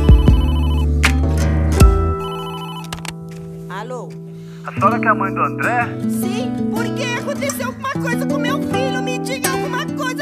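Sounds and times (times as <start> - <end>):
old-fashioned telephone bell ringing: 0.0 - 0.9, 2.1 - 3.1
speech: 4.0 - 10.2.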